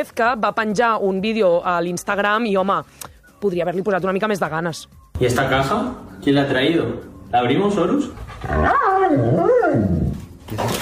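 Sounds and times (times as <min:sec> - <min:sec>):
speech: 0:00.0 - 0:10.0
dog whining and yowling: 0:08.1 - 0:10.4.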